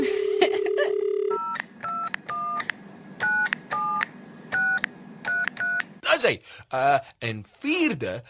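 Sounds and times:
dial tone from a lifted telephone handset: 0:00.3 - 0:02.1
electronic telephone keypad beeps: 0:01.0 - 0:05.9
speech: 0:06.3 - 0:08.2.

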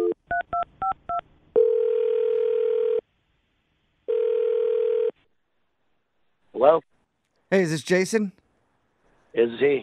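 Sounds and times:
loud steady telephone tone: 0:01.6 - 0:03.0, 0:04.1 - 0:05.2
speech: 0:06.6 - 0:06.9, 0:07.5 - 0:08.4, 0:09.4 - 0:09.8.

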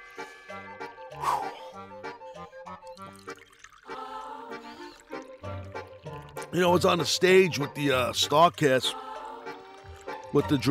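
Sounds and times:
person gulping water while drinking: 0:02.8 - 0:06.6
water pouring and glugging: 0:02.8 - 0:08.3, 0:09.4 - 0:10.7
speech: 0:06.5 - 0:09.0, 0:10.3 - 0:10.7.

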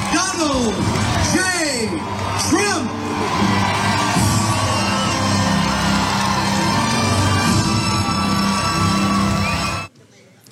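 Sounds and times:
loud crowd cheering and whooping: 0:00.0 - 0:09.9
speech: 0:00.4 - 0:01.0.

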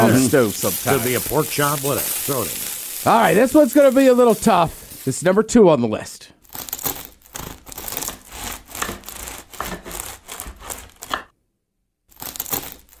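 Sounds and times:
speech: 0:00.1 - 0:06.6
knife sawing through a crusty baguette: 0:06.5 - 0:11.3.

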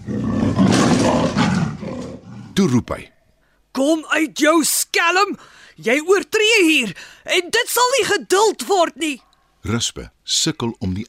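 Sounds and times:
leopard roaring inside a cave: 0:00.0 - 0:02.6
speech: 0:02.6 - 0:03.2, 0:03.8 - 0:11.0.

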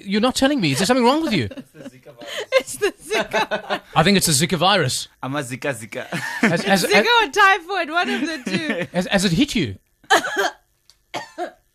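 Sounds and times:
speech: 0:00.0 - 0:11.2
laughter: 0:00.6 - 0:04.0, 0:06.0 - 0:07.2, 0:08.0 - 0:09.1
person coughing: 0:10.1 - 0:10.6, 0:11.2 - 0:11.7.

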